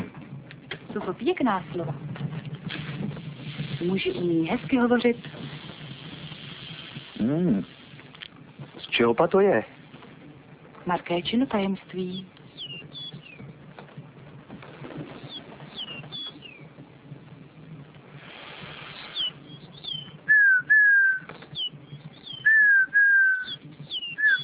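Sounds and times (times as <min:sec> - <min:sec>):
speech: 0:01.0 - 0:02.1, 0:03.8 - 0:05.3, 0:07.2 - 0:07.7, 0:09.0 - 0:09.7, 0:10.9 - 0:12.3
chaffinch singing: 0:11.9 - 0:13.5, 0:15.2 - 0:16.7, 0:19.0 - 0:24.4.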